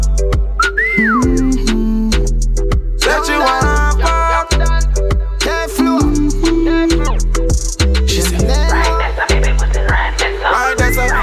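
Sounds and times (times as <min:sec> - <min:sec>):
thumping music beat with hi-hat-like ticks: 0:00.0 - 0:11.2
rising and falling whistle: 0:00.6 - 0:01.6.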